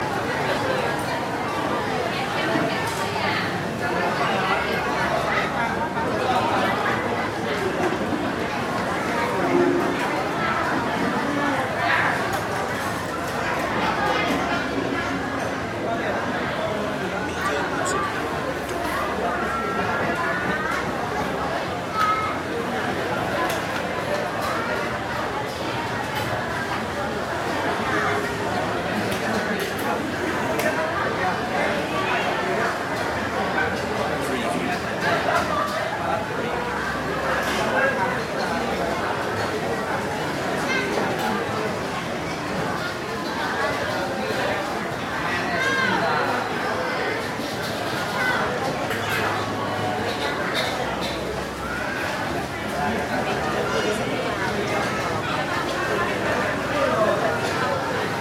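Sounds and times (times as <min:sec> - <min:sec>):
street food market ambience: 0:00.0 - 0:58.1.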